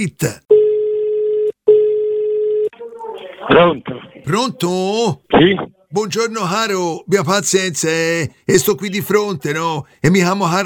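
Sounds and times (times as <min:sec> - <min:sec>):
speech: 0:00.0 - 0:00.4, 0:03.5 - 0:10.6
telephone line ringing for a call to a radio show: 0:00.5 - 0:02.7.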